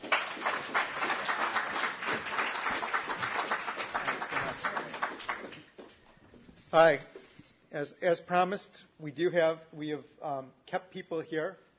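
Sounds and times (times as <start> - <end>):
audience applauding closing a conference session: 0.0 - 6.0
speech: 6.7 - 7.1, 7.7 - 11.7.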